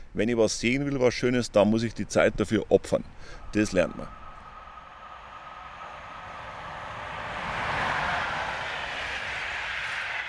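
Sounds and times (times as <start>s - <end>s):
speech: 0.2s - 4.2s
train rolling along the rails: 3.7s - 10.2s.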